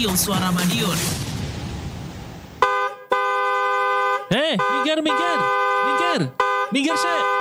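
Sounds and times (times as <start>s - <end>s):
speech: 0.0s - 1.3s, 4.3s - 7.3s
car horn honking: 2.6s - 7.3s.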